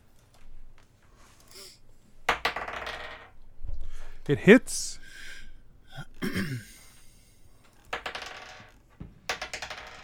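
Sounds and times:
dice clattering on a hard tabletop: 2.3 - 3.3, 7.8 - 10.0
speech: 4.3 - 5.0
dice rattling and tumbling: 7.9 - 10.0.

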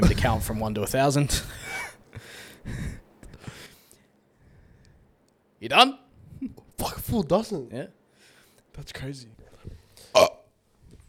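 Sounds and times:
speech: 0.0 - 3.0, 5.6 - 8.0, 8.8 - 9.4, 10.2 - 10.4
person burping: 10.1 - 10.5.

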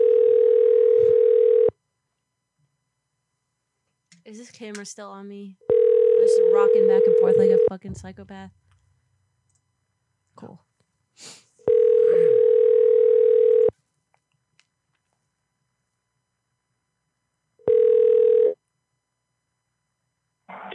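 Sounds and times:
phone line ringback tone: 0.0 - 1.7, 5.7 - 7.7, 11.7 - 13.7, 17.6 - 18.6
speech: 4.3 - 8.6, 10.4 - 10.6.

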